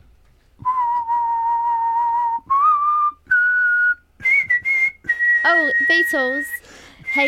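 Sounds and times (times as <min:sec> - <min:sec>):
person whistling a slow pop tune: 0:00.6 - 0:07.2
speech: 0:05.5 - 0:07.2.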